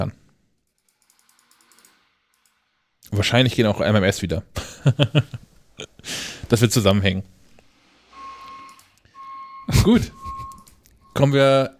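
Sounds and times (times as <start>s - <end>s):
speech: 0.0s - 0.2s, 3.1s - 7.4s, 9.7s - 10.2s, 11.2s - 11.7s
garbage truck reversing alarm beeps: 8.1s - 11.5s.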